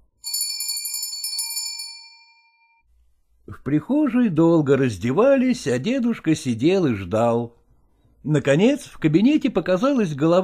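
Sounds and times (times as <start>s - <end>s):
doorbell ringing in a hallway with a single high chime: 0.2s - 2.8s
speech: 3.6s - 7.6s, 8.2s - 10.4s.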